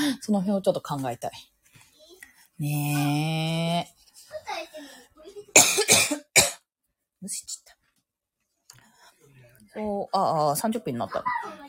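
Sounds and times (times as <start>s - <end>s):
speech: 0.1s - 1.6s, 2.6s - 6.2s, 7.2s - 7.8s, 9.8s - 11.6s
person coughing harshly: 5.5s - 6.6s.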